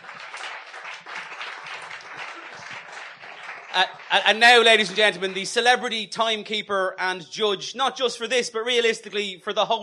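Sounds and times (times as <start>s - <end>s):
crowd applauding contestants: 0.0s - 5.9s
speech: 3.8s - 9.8s.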